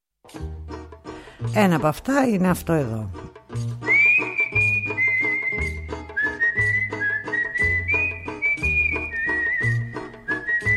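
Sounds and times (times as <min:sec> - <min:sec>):
speech: 0:00.3 - 0:00.6, 0:01.5 - 0:03.2
strummed and plucked instrumental accompaniment with a rhythmic bass pulse: 0:00.3 - 0:01.9, 0:02.8 - 0:10.7
whistled melody in a Greek popular laiko song: 0:03.7 - 0:10.7.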